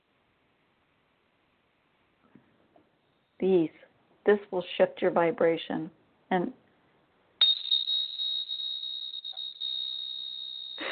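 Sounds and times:
speech: 0:03.4 - 0:06.6
hand-held chimes struck and ringing: 0:07.4 - 0:10.8.

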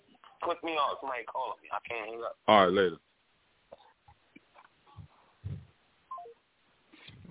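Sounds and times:
speech: 0:00.5 - 0:03.1
low thumps: 0:04.9 - 0:05.8
landline phone keypad beeps: 0:06.1 - 0:06.4.

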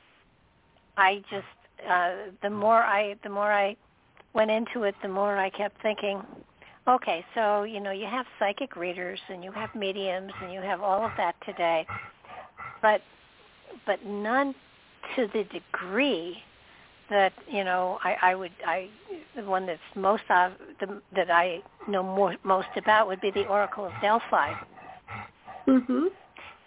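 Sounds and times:
speech: 0:01.0 - 0:12.2, 0:12.8 - 0:13.2, 0:13.8 - 0:16.5, 0:17.1 - 0:26.2
old dog breathing heavily: 0:08.9 - 0:13.7, 0:18.1 - 0:26.6
person murmuring: 0:20.6 - 0:24.7, 0:25.6 - 0:26.2.

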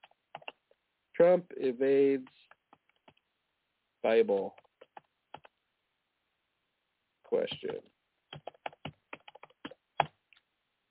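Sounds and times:
loud typing on a computer keyboard: 0:00.0 - 0:00.6, 0:02.6 - 0:03.2, 0:04.4 - 0:05.6, 0:07.5 - 0:10.2
speech: 0:01.2 - 0:02.4, 0:04.0 - 0:04.6, 0:07.3 - 0:08.5.

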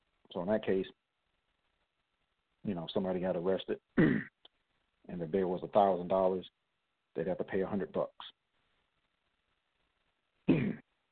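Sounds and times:
speech: 0:00.3 - 0:01.0, 0:02.6 - 0:04.3, 0:05.1 - 0:06.6, 0:07.2 - 0:08.4
throat clearing: 0:04.0 - 0:04.4, 0:10.5 - 0:10.9.

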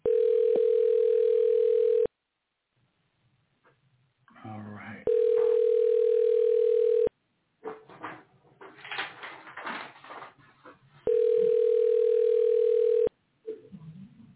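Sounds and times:
telephone ringback tone from an outgoing call: 0:00.0 - 0:02.1, 0:05.1 - 0:07.1, 0:11.1 - 0:13.1.

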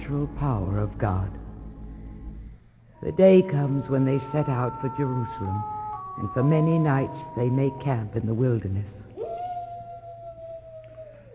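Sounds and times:
low hum: 0:00.0 - 0:11.3
speech: 0:00.1 - 0:01.5, 0:03.0 - 0:09.0
jackal howling in the wilderness: 0:02.9 - 0:11.3.

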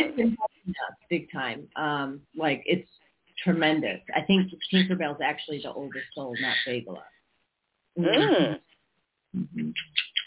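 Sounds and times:
speech: 0:01.4 - 0:07.2, 0:08.0 - 0:08.7, 0:09.3 - 0:10.0
pet bird choppy chatter: 0:09.7 - 0:10.2.

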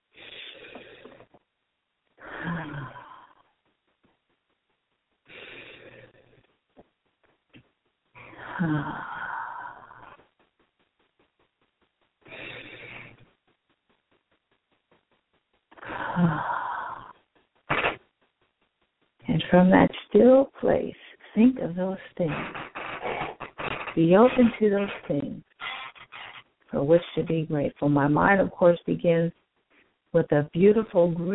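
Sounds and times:
deep breathing in through the belly and out through the mouth: 0:00.0 - 0:01.4, 0:02.1 - 0:04.5, 0:05.1 - 0:06.8, 0:08.1 - 0:10.8, 0:11.6 - 0:14.1, 0:14.9 - 0:18.4
speech: 0:08.6 - 0:09.1, 0:19.5 - 0:22.6, 0:24.0 - 0:25.3, 0:26.8 - 0:29.4, 0:30.1 - 0:31.3.

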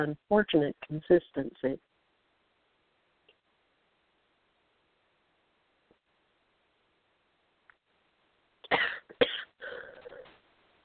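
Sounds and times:
speech: 0:00.0 - 0:01.9
harsh coughs: 0:08.7 - 0:10.3.

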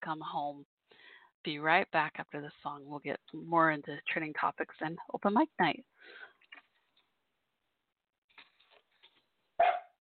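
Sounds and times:
speech: 0:00.1 - 0:06.3
faint yips: 0:09.6 - 0:10.0
male dog barking: 0:09.6 - 0:10.0.

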